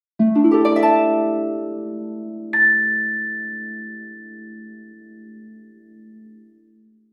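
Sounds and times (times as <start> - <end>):
harp glissando: 0.2 - 5.8
bell: 2.5 - 6.7.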